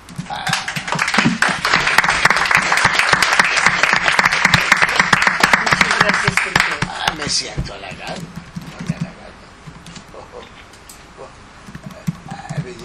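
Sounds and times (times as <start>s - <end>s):
audience applause: 0.3s - 7.4s
speech: 7.4s - 7.6s.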